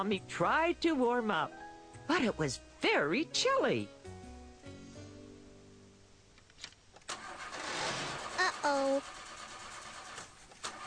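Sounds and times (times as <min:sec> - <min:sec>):
speech: 0:00.0 - 0:04.0, 0:08.7 - 0:09.2
car engine cranking and sputtering in cold snowy weather: 0:07.1 - 0:10.8.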